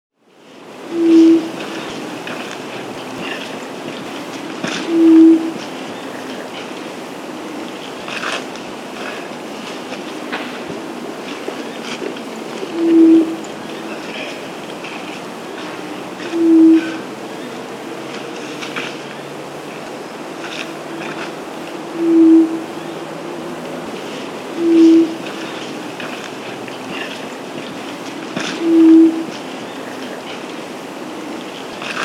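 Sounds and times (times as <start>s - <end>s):
White-throated quail-dove Geotrygon frenata calling in the Andes: 0.9s - 2.4s, 3.1s - 6.5s, 12.6s - 14.5s, 16.2s - 17.6s, 20.5s - 23.1s, 24.0s - 26.2s, 28.4s - 30.4s.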